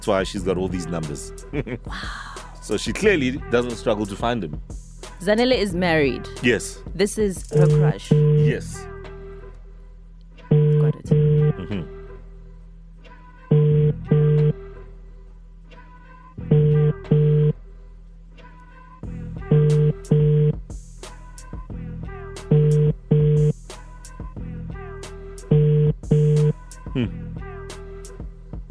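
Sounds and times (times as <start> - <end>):
speech: 0.0 - 8.9
telephone double-burst ringback tones: 7.6 - 8.5, 10.5 - 11.6, 13.5 - 14.6, 16.5 - 17.6, 19.5 - 20.5, 22.5 - 23.5, 25.5 - 26.5.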